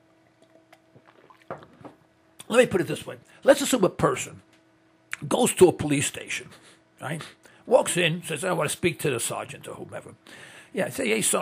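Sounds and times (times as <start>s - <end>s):
person gulping water: 0.2s - 2.1s
water sloshing in the mouth while taking a swig: 0.2s - 2.1s
speech: 1.5s - 1.8s, 2.5s - 4.5s, 5.2s - 11.4s.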